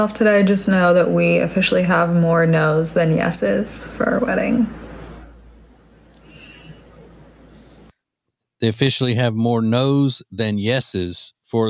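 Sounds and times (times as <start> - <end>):
speech: 0.0 - 4.8, 8.6 - 11.6
crickets chirping: 0.0 - 7.9
low hum: 0.0 - 7.9.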